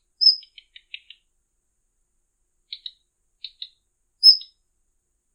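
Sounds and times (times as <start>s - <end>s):
Daurian redstart thin high whistled notes: 0.2s - 0.5s, 3.5s - 4.5s.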